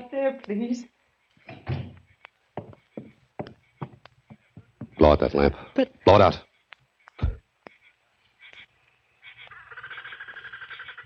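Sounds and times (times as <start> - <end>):
speech: 0.1 - 1.8, 5.0 - 6.5
door pushed shut with a heavy thud: 1.5 - 2.0
door's wooden bumps and knocks against the frame: 1.5 - 5.2.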